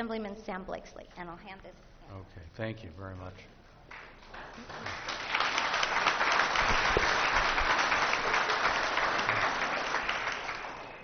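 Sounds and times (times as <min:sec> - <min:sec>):
speech: 0:00.0 - 0:03.6, 0:04.3 - 0:05.2
crowd applauding at a public board hearing on water quality: 0:04.2 - 0:11.0.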